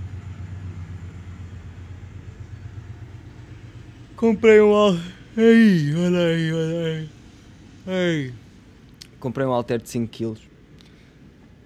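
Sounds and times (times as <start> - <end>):
train rumbling past: 0.0 - 8.9
speech: 4.2 - 7.2, 7.9 - 8.4, 9.2 - 10.5.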